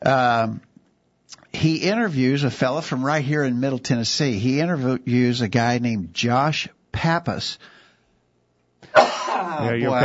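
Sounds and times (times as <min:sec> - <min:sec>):
speech: 0:00.0 - 0:00.7, 0:01.3 - 0:07.8, 0:08.9 - 0:10.0
person coughing and clearing throat from a tickle in the throat: 0:08.9 - 0:09.7.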